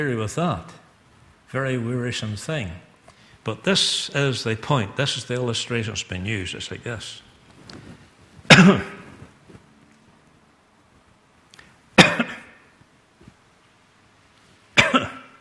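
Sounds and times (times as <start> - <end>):
speech: 0.0 - 0.8, 1.5 - 8.0, 8.6 - 9.0
harsh coughs: 8.5 - 9.2, 12.0 - 12.6, 14.8 - 15.3.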